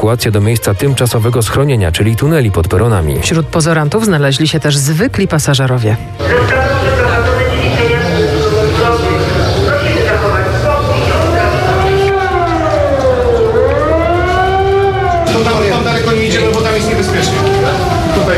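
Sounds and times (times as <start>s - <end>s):
speech: 0.0s - 7.2s
civil defense siren wailing: 6.2s - 18.3s
indistinct voices: 6.2s - 18.3s.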